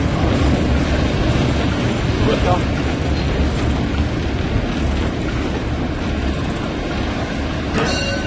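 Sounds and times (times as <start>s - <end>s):
locomotive cab roaring as the train rolls into the station in Halberstadt Germany: 0.0s - 8.2s
sharp metallic squeal of a train: 7.8s - 8.2s.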